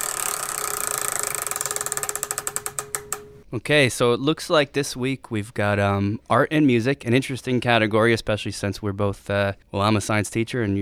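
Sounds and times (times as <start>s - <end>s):
prize wheel being spun with ratcheting ticks: 0.0s - 3.4s
speech: 3.5s - 10.8s.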